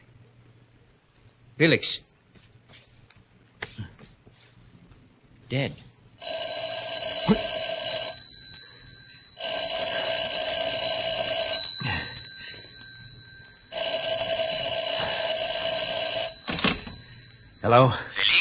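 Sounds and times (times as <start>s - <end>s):
speech: 1.6s - 2.1s, 5.5s - 5.8s, 17.6s - 18.3s
telephone ringing: 6.2s - 18.3s.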